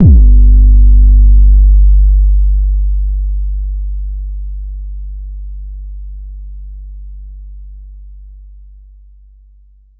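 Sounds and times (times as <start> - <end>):
808 bass drum kick: 0.0 - 5.2.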